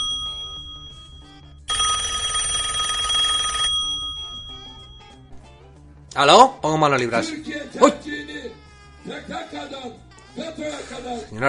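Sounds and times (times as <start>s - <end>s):
loud bright metallic telephone bell ringing: 0.0s - 5.3s
speech: 6.2s - 8.3s, 9.1s - 11.4s.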